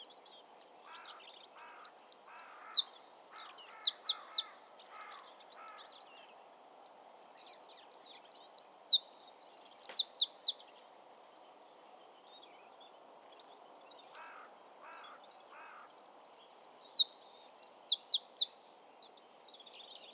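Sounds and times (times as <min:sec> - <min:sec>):
Eurasian wren song, Troglodytes troglodytes: 0:00.8 - 0:05.7, 0:07.2 - 0:10.6, 0:14.2 - 0:20.1.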